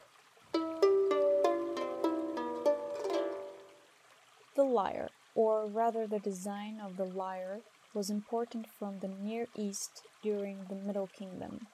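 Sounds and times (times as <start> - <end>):
harp playing a melodic run of plucked notes: 0.6 - 3.8
speech: 4.6 - 11.7.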